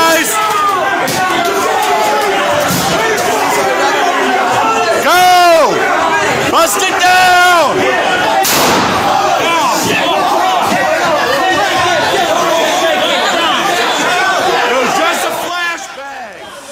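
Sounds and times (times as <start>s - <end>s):
dense noisy crowd chatter and shouting: 0.0s - 16.7s
single sharp gunshot of a real bullet fired during a riot: 8.4s - 9.2s.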